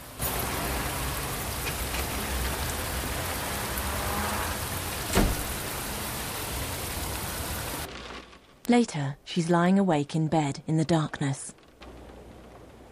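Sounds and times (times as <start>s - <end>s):
steady rain: 0.0s - 8.6s, 11.6s - 12.8s
sharp splash or knock: 5.1s - 5.5s
speech: 8.7s - 11.6s.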